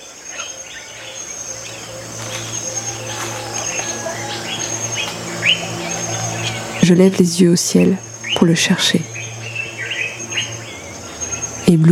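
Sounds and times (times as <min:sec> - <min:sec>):
insects buzzing: 0:00.0 - 0:11.9
low outdoor hum: 0:00.0 - 0:11.9
small birds chirping: 0:00.0 - 0:11.9
eagle two-syllable screeching call: 0:02.0 - 0:06.9
speech: 0:06.9 - 0:09.1, 0:11.7 - 0:11.9.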